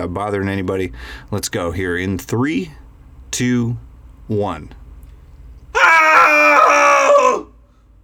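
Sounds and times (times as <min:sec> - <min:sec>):
speech: 0:00.0 - 0:04.8
cathartic group scream from several voices: 0:05.8 - 0:07.5.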